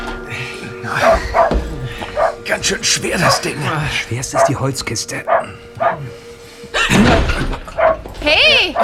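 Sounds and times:
dog barking: 0:01.0 - 0:02.4, 0:04.3 - 0:04.6, 0:05.3 - 0:06.0, 0:07.7 - 0:08.8
speech: 0:02.6 - 0:06.2, 0:08.2 - 0:08.8.

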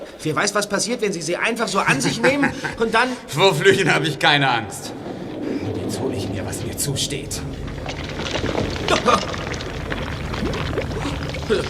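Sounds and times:
speech: 0:00.2 - 0:05.0, 0:05.9 - 0:09.4, 0:11.0 - 0:11.6
laughter: 0:01.7 - 0:04.2
water bursting into a cave and churning: 0:03.4 - 0:11.6.

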